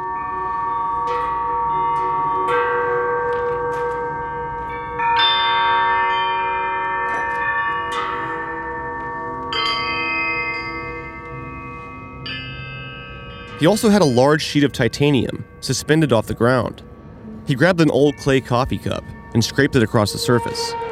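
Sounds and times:
homemade wind chimes made from metal shackles clanging: 0.0 - 20.8
speech: 13.6 - 16.9, 17.5 - 20.8.

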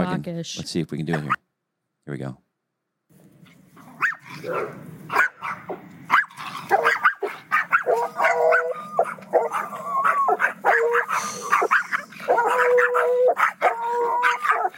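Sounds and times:
speech: 0.0 - 1.4, 2.1 - 2.4, 4.4 - 5.2
Yorkie dogs barking: 3.7 - 14.7.

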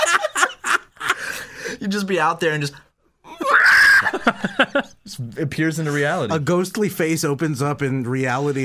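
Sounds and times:
laughter: 0.0 - 1.4, 3.3 - 5.0
speech: 1.8 - 2.9, 4.1 - 8.6
voice mimicking a woman's high shrill scream: 3.3 - 4.2.

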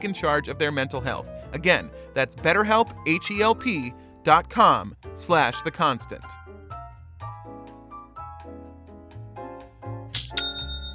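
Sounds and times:
speech: 0.0 - 6.4
notification chime for a new sale on an online store: 10.4 - 10.9.

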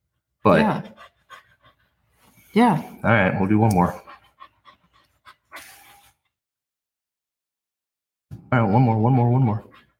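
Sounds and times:
dog panting: 0.0 - 6.5, 9.1 - 9.9
speech: 0.4 - 1.0, 2.6 - 4.0, 8.5 - 9.7.

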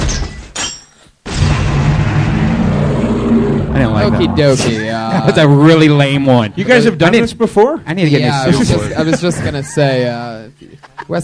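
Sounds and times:
airstrike explosion sound effect: 1.3 - 5.0
speech: 3.8 - 11.2.

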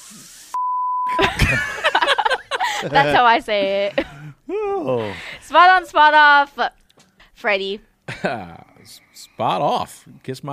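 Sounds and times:
high-pitched censor bleep over a swear word: 0.6 - 1.2
laughter: 1.1 - 5.4
person talking loudly: 2.8 - 3.7
speech: 2.8 - 6.8, 7.4 - 10.5.

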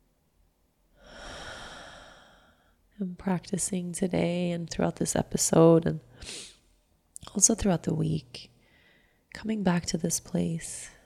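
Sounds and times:
deep breath drawn in slowly: 1.0 - 2.8, 8.6 - 9.3
speech: 3.0 - 6.5, 7.4 - 8.5, 9.3 - 11.0.

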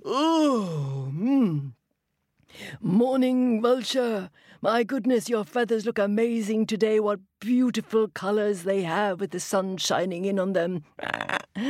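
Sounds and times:
storyteller making a drawn-out vocal yawn for a lion: 0.0 - 1.7
speech: 2.8 - 11.6.

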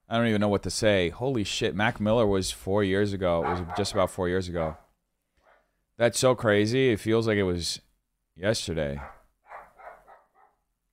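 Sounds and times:
speech: 0.1 - 4.8, 6.0 - 9.2
dog barking: 3.4 - 4.9, 9.0 - 10.6.

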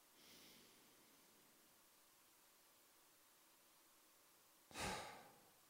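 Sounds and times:
slow meditative breathing in through the nose, out through the mouth: 0.1 - 1.6, 4.7 - 5.6.

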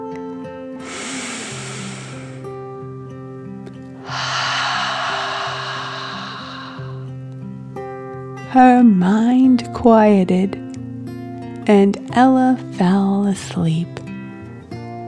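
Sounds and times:
soft sustained music with low tones: 0.0 - 15.0
deep breath in and out: 0.8 - 2.8, 3.9 - 7.2
speech: 8.6 - 10.6, 11.7 - 14.0.

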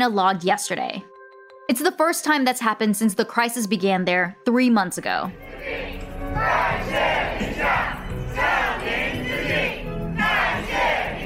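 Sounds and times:
speech: 0.0 - 1.1, 1.7 - 7.5
large crowd cheering and chanting at a street parade in Wuhan: 5.4 - 11.2.

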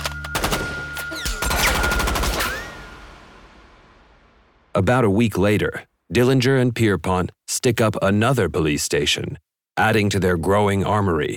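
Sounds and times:
Tommy gun submachine gun firing .45 caliber rounds in automatic bursts: 0.3 - 3.2
speech: 4.8 - 11.3.

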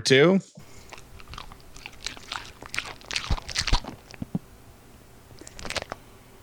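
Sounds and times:
short smacking lick-like sound: 0.6 - 4.4, 5.4 - 6.0
crunchy eating of a cracker: 0.6 - 4.5, 5.3 - 6.1.

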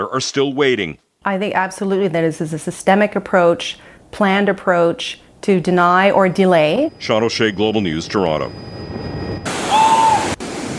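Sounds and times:
speech: 0.0 - 8.7
gusting high wind on a beach: 5.8 - 10.7
faint whistling tone: 6.9 - 10.3
crashing storm surf on a beach: 9.4 - 10.7.

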